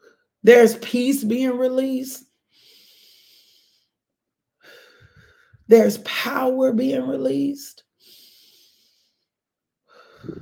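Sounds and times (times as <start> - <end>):
speech: 0.4 - 2.3, 5.7 - 7.8
deep breaths in through the nose and out through the mouth: 2.5 - 4.0, 4.6 - 5.7, 8.0 - 10.3.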